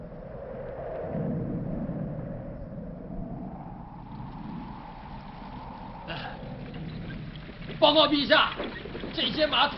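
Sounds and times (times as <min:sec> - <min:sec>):
deep low thunder rumble: 0:00.0 - 0:08.2
strong wind in a thunderstorm: 0:00.0 - 0:09.7
heavy rain in a thunderstorm: 0:04.1 - 0:09.7
speech: 0:07.8 - 0:09.7.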